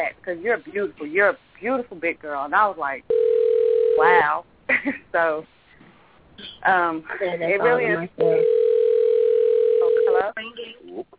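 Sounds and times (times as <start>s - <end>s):
recorded Verizon Wireless announcement speaking: 0.0s - 3.2s, 3.9s - 4.4s, 6.4s - 8.7s, 9.7s - 11.1s
speech: 0.0s - 3.3s, 4.0s - 5.6s, 6.4s - 8.6s
telephone ringback tone of an outgoing call over a narrow phone line: 3.1s - 4.3s, 8.2s - 10.3s.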